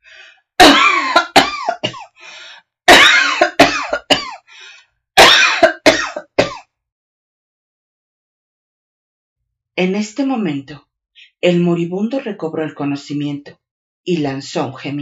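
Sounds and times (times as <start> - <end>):
harsh coughing fit with hacking coughs: 0.6 - 2.2, 2.9 - 4.5, 5.2 - 6.7
speech: 9.8 - 14.9.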